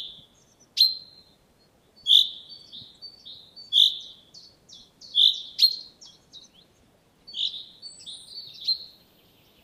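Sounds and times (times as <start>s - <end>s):
Common chaffinch calls: 0.0s - 1.4s, 2.0s - 9.6s.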